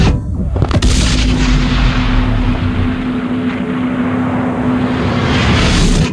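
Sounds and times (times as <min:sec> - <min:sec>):
shockwave hit: 0:00.0 - 0:06.1.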